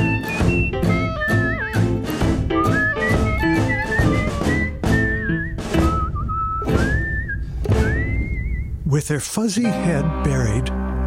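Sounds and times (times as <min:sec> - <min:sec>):
steady rhythmic thumping beats: 0:00.0 - 0:08.5
person whistling a bright wandering melody: 0:00.0 - 0:08.8
speech: 0:09.0 - 0:11.0.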